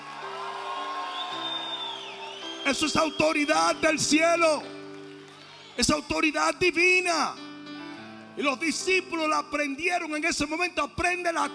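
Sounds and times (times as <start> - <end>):
audience shouting and cheering with high whoops: 0.0 - 6.5
speech: 2.7 - 4.8, 5.8 - 7.4, 8.4 - 11.5.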